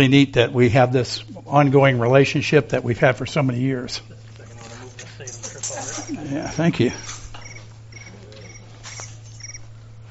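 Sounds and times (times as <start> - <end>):
speech: 0.0 - 4.1, 5.2 - 7.1
low constant hum: 0.0 - 10.0
laughter: 3.8 - 8.6
phone ringtone of chirping cricket: 7.4 - 9.7.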